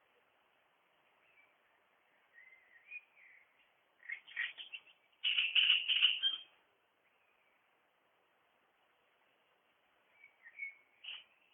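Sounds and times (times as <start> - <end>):
great reed warbler harsh grating chattering song: 1.0 - 7.7, 10.0 - 11.5.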